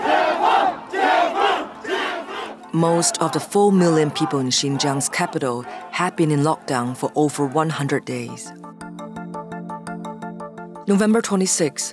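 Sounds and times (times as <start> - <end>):
large protest crowd chanting in unison outdoors in the street: 0.0 - 8.4
speech: 2.8 - 8.8, 10.9 - 11.9.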